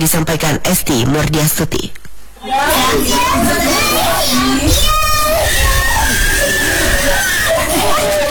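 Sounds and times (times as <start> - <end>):
speech: 0.0 - 5.0
babies wailing at a crowded community health post: 2.4 - 8.2
busy chatter of children and adults: 2.4 - 8.2.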